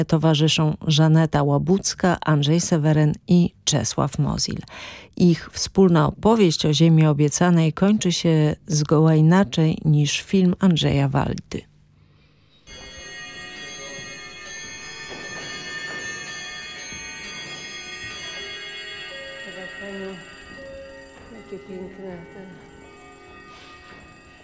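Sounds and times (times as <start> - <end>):
speech: 0.0 - 11.7
chiming clock striking: 12.6 - 24.4.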